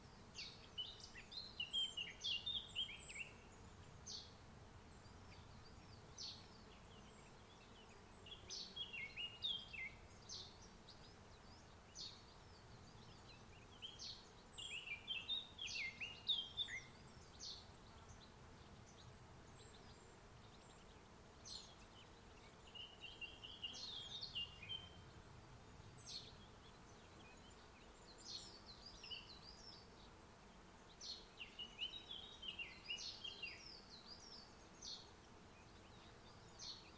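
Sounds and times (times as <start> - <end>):
bird calls and chirps in a summer forest on Mont Ventoux: 0.0 - 25.2, 25.9 - 36.9.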